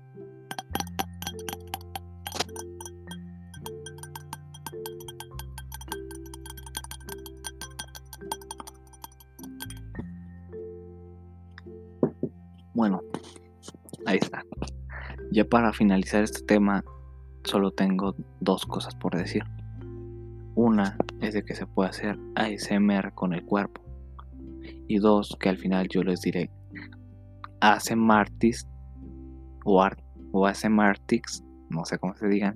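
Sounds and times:
light taps on a glass goblet for ASMR: 0.5 - 10.0
speech: 12.8 - 13.0, 15.4 - 16.9, 17.5 - 19.6, 20.6 - 23.8, 24.9 - 27.0, 27.6 - 28.7, 29.6 - 32.5.

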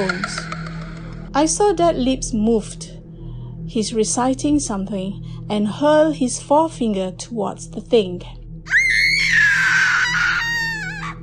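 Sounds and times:
speech: 1.4 - 2.9, 3.7 - 8.4
loud piercing scream: 8.7 - 11.2.

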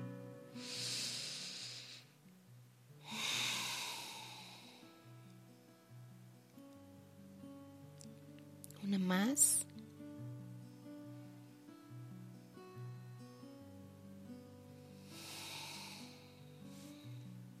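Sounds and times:
soft sustained music: 0.0 - 17.5
deep conscious breathing close to microphone: 0.5 - 2.2, 3.0 - 5.1, 14.7 - 17.4
speech: 8.8 - 9.7.

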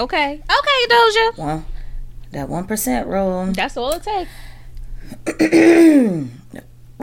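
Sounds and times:
speech: 0.0 - 1.7, 2.3 - 7.0
person coughing and choking on a drink: 5.1 - 6.4.

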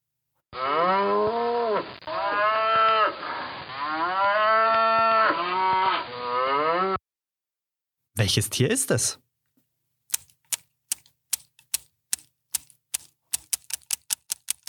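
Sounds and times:
cow mooing: 0.6 - 7.0
speech: 8.3 - 9.2.

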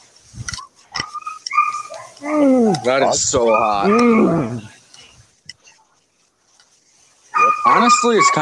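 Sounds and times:
person imitating a dog bark: 2.2 - 4.7, 7.4 - 8.3
speech: 2.2 - 4.7, 7.8 - 8.3.

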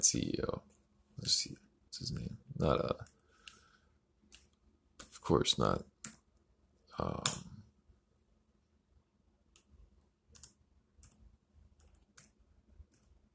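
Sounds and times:
speech: 0.0 - 3.1, 5.3 - 5.9, 7.0 - 7.5
soft key clicks from a computer keyboard: 10.3 - 11.2, 11.8 - 13.2.

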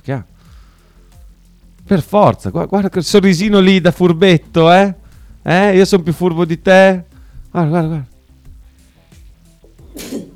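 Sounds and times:
speech: 0.0 - 0.3, 1.9 - 8.1
person sneezing: 9.9 - 10.3.

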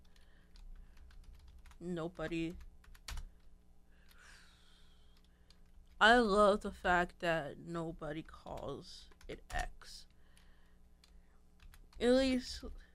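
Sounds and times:
computer keyboard typing during a login: 0.0 - 1.8, 2.4 - 4.2, 5.1 - 6.0, 8.1 - 12.3
speech: 1.8 - 2.7, 6.0 - 10.1, 12.0 - 12.8.

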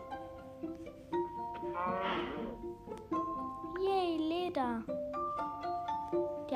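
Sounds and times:
video game music: 0.0 - 6.5
video game cow mooing: 1.6 - 2.6
speech: 4.5 - 5.6.

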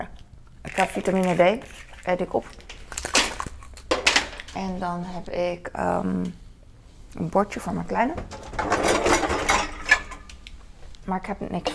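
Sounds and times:
speech: 0.7 - 2.6, 4.6 - 6.4, 7.1 - 9.1, 11.1 - 11.7
dishes clattering while being unloaded from a dishwasher: 8.2 - 10.4.

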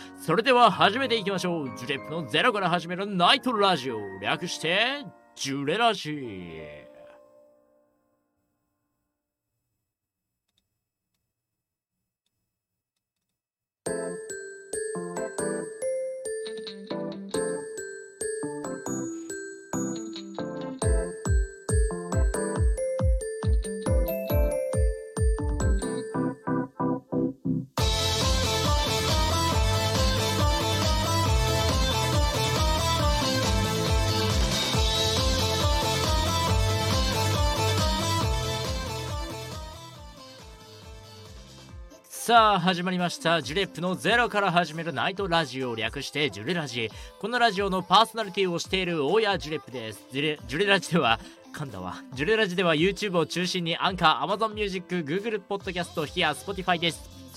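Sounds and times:
opening theme song with bright chiming melody and steady beats: 0.0 - 7.9, 13.9 - 41.7
speech: 0.2 - 6.9, 42.3 - 57.3.

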